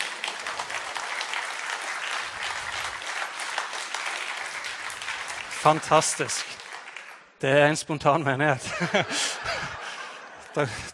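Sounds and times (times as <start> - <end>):
church audience applause: 0.0 - 7.2
speech: 5.6 - 6.6, 7.4 - 9.6, 10.6 - 10.9
laughter: 8.6 - 10.9.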